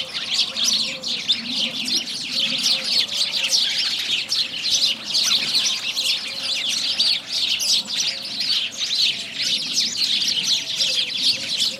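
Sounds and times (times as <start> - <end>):
house sparrows chirping in a dense chorus: 0.0 - 11.7.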